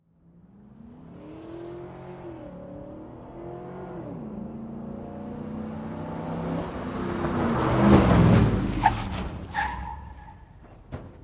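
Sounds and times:
5.3 Liter truck driving by and skidding to a stop: 0:05.8 - 0:11.2.

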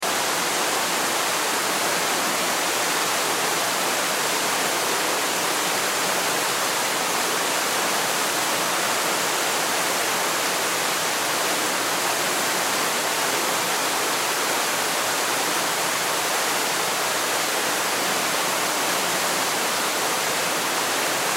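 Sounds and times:
distant waterfall splashing: 0:00.0 - 0:21.3.

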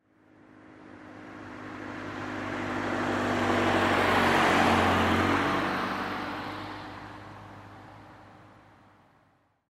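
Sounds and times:
1996 Saturn SL2 car driving by left to right at 25 mph: 0:00.8 - 0:08.4.

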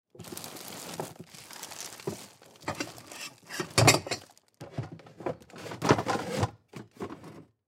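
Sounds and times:
rummaging in a cupboard: 0:00.1 - 0:07.6
bag rustling: 0:00.2 - 0:04.6
can moving: 0:00.2 - 0:06.5.

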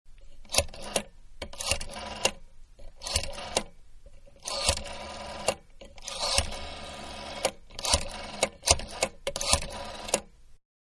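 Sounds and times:
rotary telephone dialing randomly: 0:00.5 - 0:02.4, 0:03.0 - 0:03.7, 0:04.4 - 0:10.3.

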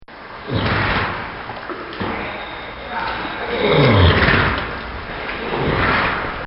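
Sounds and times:
horses in therapy swimming pool splashing: 0:00.3 - 0:06.4.

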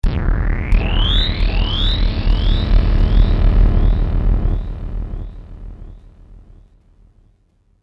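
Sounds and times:
ghostly danger synth stab: 0:00.0 - 0:06.8.

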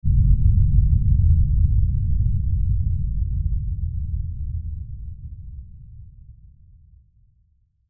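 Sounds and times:
low pounding horror impact LFE hit: 0:00.0 - 0:05.4.

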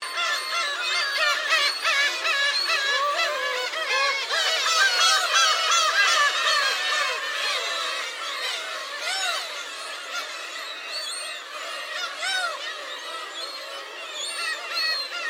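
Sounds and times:
large group of gulls calling in Hachinohe Japan: 0:00.0 - 0:15.2.

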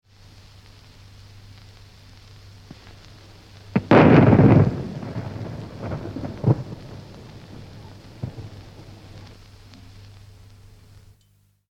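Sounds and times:
single pistol shot and reverberation from 78 disc: 0:03.8 - 0:06.6.

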